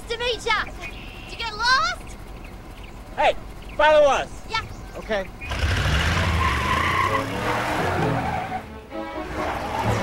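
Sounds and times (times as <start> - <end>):
pickup truck engine and tires turning around on a dirt road: 0.0 - 10.0
speech: 0.3 - 0.8, 3.2 - 5.4
pickup truck tires skidding on a dirt road: 5.4 - 10.0.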